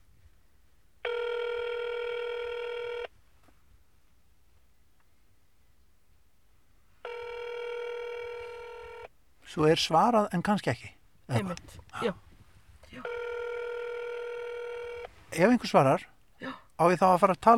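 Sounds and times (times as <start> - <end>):
buzzy electronic telephone tones in an automated phone menu: 1.0 - 3.1, 7.0 - 9.1, 13.0 - 15.1
speech: 9.5 - 12.2, 15.3 - 17.5.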